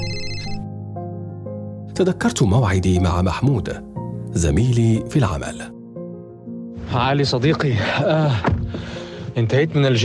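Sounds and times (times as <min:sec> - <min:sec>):
phone ringtone behind a locked door: 0:00.0 - 0:00.7
speech: 0:02.0 - 0:05.8, 0:06.9 - 0:10.0.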